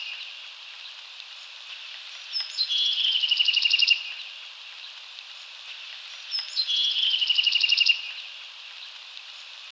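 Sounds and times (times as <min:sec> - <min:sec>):
background hiss: 0:00.0 - 0:09.6
Bewick's wren singing at Hyde Park: 0:02.2 - 0:04.3, 0:06.2 - 0:08.3.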